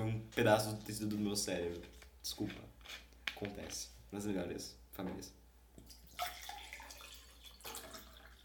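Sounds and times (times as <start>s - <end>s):
speech: 0.3s - 5.4s
water gurgling: 5.9s - 8.4s.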